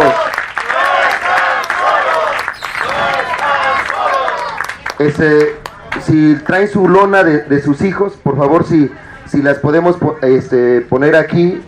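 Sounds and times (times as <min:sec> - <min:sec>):
forum audience clapping: 0:00.0 - 0:06.6
many voices shouting and cheering: 0:00.0 - 0:06.7
speech: 0:05.0 - 0:11.6.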